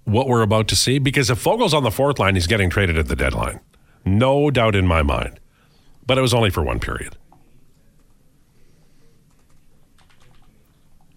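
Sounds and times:
low hum: 0.0s - 11.1s
speech: 0.1s - 5.4s, 6.1s - 7.2s
typing on a computer keyboard: 9.2s - 11.1s.

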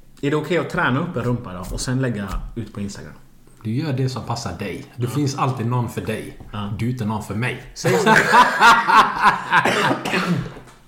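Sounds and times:
speech: 0.2s - 10.6s
laughter: 7.8s - 10.0s
person coughing harshly: 9.4s - 10.7s.

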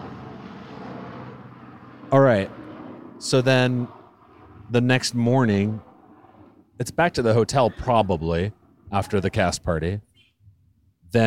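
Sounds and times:
helicopter droning overhead: 0.0s - 6.6s
speech: 2.1s - 2.6s, 3.2s - 4.0s, 4.7s - 5.9s, 6.8s - 10.1s.

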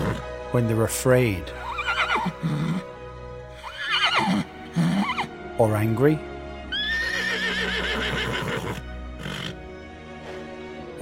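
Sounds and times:
horse neighing in a stable in the southwest of England: 0.0s - 0.3s, 1.6s - 2.9s, 3.6s - 5.4s, 6.7s - 9.6s
speech: 0.5s - 2.9s, 4.2s - 4.5s, 5.6s - 6.3s.

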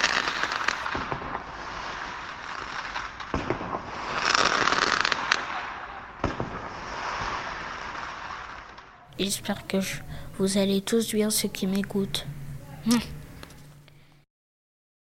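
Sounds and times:
firework bangs: 0.0s - 9.4s
fireworks crackling and fizzing: 0.0s - 13.9s
speech: 9.2s - 13.2s.

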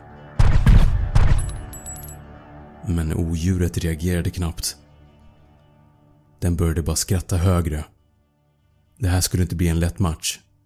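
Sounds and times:
pistol gunshots with booming echo: 0.4s - 1.6s
speech: 2.8s - 4.8s, 6.4s - 8.0s, 9.0s - 10.5s.

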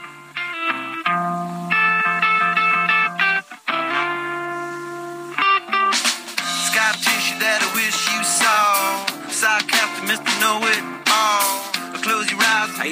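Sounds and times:
clean undistorted electric guitar playing a bright melodic riff: 0.0s - 12.8s
fuller, busier music with percussive hits: 5.9s - 12.8s.

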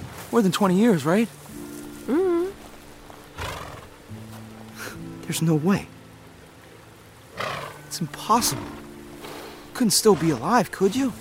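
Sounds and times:
speech: 0.3s - 1.4s, 5.3s - 6.0s, 8.0s - 8.8s, 9.8s - 11.1s
horse snorting: 3.4s - 3.9s, 7.3s - 7.8s, 8.4s - 10.6s
horse whinnying: 3.4s - 3.9s, 7.3s - 7.8s.

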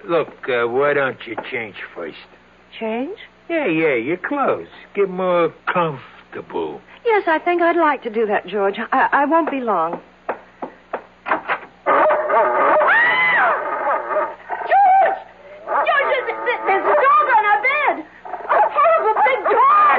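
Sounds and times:
speech: 0.0s - 10.1s
dog barking and whimpering: 11.9s - 19.9s.

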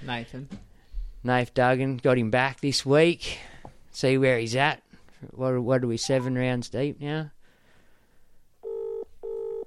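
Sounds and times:
speech: 0.0s - 0.6s, 1.2s - 7.4s
buzzy telephone ringing tone over the line: 8.6s - 9.6s.

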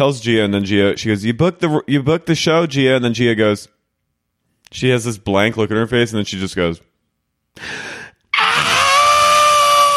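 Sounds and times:
speech: 0.0s - 3.8s, 4.7s - 6.9s, 7.6s - 7.9s
short breathy gasp: 7.6s - 8.3s
loud sustained theatrical scream from a played clip: 8.3s - 9.9s.

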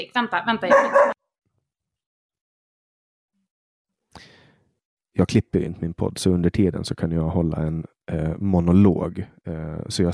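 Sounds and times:
speech: 0.0s - 1.2s, 5.2s - 10.1s
dog barking: 0.7s - 1.2s.

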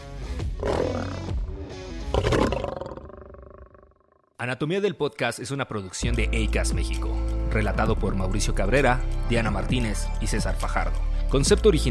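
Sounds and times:
lion roaring: 0.6s - 1.4s, 2.1s - 4.0s
speech: 4.4s - 11.8s.

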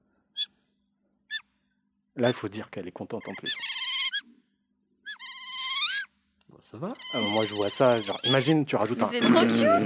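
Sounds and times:
otter squealing calls: 2.2s - 2.5s, 3.1s - 4.3s, 5.0s - 6.1s, 6.8s - 9.8s
speech: 2.2s - 3.7s, 6.7s - 9.8s.

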